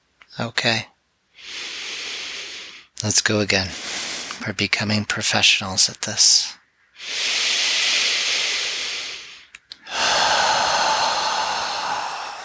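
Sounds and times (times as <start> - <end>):
speech: 0.4 - 1.6, 3.0 - 7.4
slow deep breathing with long exhales in a guided breathing exercise: 1.4 - 2.9, 3.7 - 4.4, 7.0 - 12.4
soft catches of air: 6.9 - 12.4.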